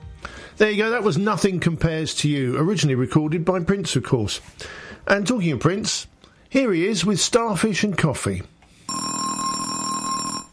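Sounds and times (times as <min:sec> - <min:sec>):
speech: 0:00.6 - 0:08.6
alarm clock ringing with a bright metallic tone: 0:08.9 - 0:10.5.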